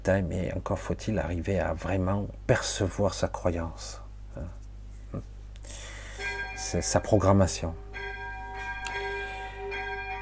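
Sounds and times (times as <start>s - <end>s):
speech: 0.0s - 5.9s, 6.6s - 7.8s
church bell ringing: 5.9s - 10.2s.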